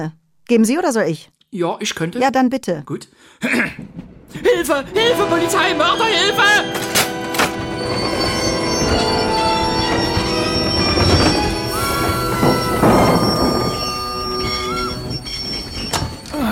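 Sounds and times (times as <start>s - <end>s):
speech: 0.0s - 6.9s
train braking hard with wheels squealing: 5.0s - 16.5s.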